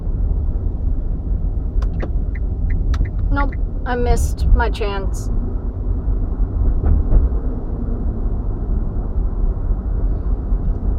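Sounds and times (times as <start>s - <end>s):
car driving on cobblestones: 0.0s - 10.9s
car tyres and engine rumbling on cobblestones: 0.0s - 10.9s
ticks and squeaks: 1.8s - 3.6s
speech: 3.4s - 5.4s.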